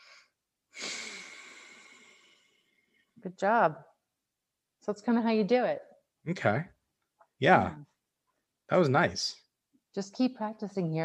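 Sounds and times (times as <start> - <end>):
deep breath blown out during a stress-relief exercise: 0.0 - 2.8
speech: 3.2 - 3.9, 4.8 - 6.8, 7.4 - 7.9, 8.7 - 9.4, 10.0 - 11.0.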